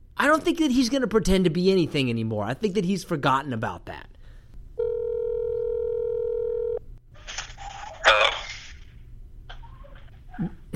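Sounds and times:
speech: 0.2s - 4.1s, 10.4s - 10.7s
outgoing phone call ringback tone: 4.8s - 6.8s.

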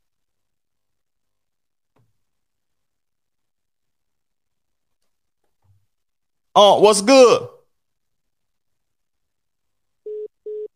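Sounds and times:
speech: 6.6s - 7.5s
phone busy signal beeps after call hangs up: 10.1s - 10.7s.

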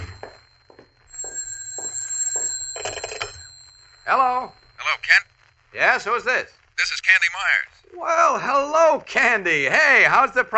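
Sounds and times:
telephone bell ringing: 0.0s - 5.3s
speech: 4.1s - 10.5s.

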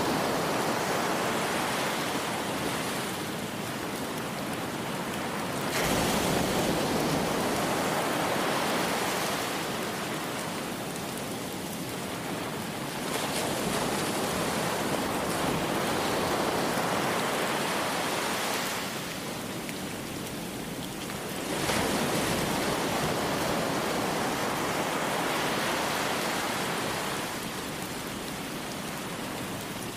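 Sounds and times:
dense steady hiss of rain: 0.0s - 29.9s
ocean waves: 0.0s - 29.9s.

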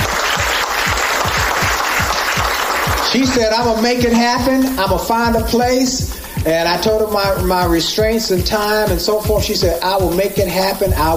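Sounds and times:
crowd clapping steadily: 0.0s - 5.1s
speech: 3.1s - 11.1s.

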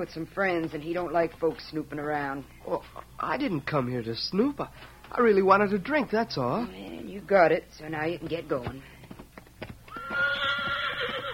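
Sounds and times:
horse hooves clopping: 0.0s - 3.7s, 4.5s - 11.3s
speech: 0.0s - 8.9s
horse whinnying: 9.8s - 11.3s.

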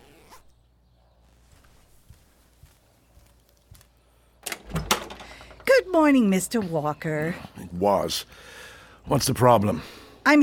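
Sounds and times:
pants zipper being pulled: 0.0s - 0.6s
soft rustling: 1.0s - 4.4s
speech: 6.0s - 10.4s.

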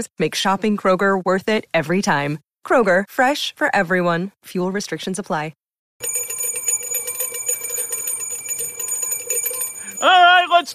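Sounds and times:
speech: 0.0s - 6.2s, 10.0s - 10.7s
bright bell ringing in rapid shimmering strikes: 6.0s - 10.7s.

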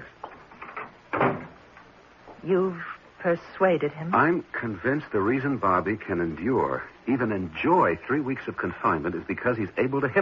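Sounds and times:
door shutting with a solid thump: 0.6s - 1.6s
speech: 2.4s - 10.2s.

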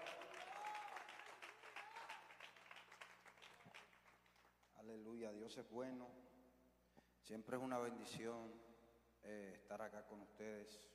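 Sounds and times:
audience applause in a church: 0.0s - 4.5s
speech: 4.8s - 6.4s, 7.3s - 10.9s.

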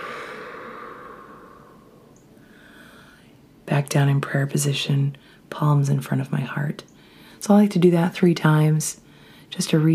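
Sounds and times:
deep breath during a yoga stretch: 0.0s - 3.4s, 7.0s - 7.4s, 9.1s - 9.5s
speech: 3.7s - 9.9s.

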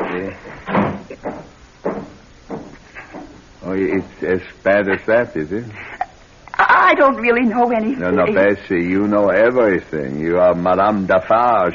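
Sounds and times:
speech: 0.2s - 1.3s, 3.7s - 5.9s, 6.9s - 11.7s
door being pushed shut: 0.7s - 2.7s
dull knocks and rattles of a door: 0.7s - 3.4s.

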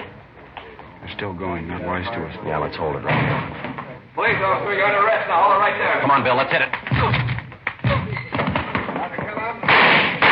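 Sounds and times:
speech: 1.0s - 7.2s
gunshots in a radio drama police arrest scene: 6.9s - 10.3s.

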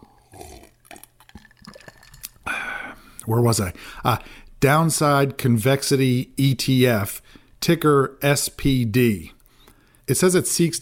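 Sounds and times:
sipping and swallowing water: 0.0s - 3.3s
soft liquid slosh: 0.4s - 2.5s
speech: 3.2s - 9.4s, 10.1s - 10.8s.

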